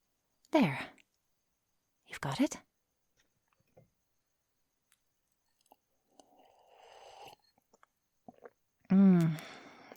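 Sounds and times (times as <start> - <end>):
speech: 0.5 - 1.0, 2.1 - 2.7, 8.9 - 9.6
sipping wine from a glass: 5.6 - 8.6.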